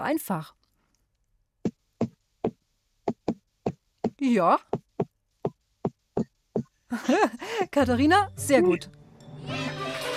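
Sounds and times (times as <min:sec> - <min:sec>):
speech: 0:00.0 - 0:00.6, 0:04.2 - 0:04.8, 0:06.9 - 0:09.6
crisp knocks on a hard surface tapping out a rhythmic pattern: 0:01.6 - 0:06.8
laughter: 0:06.9 - 0:07.7.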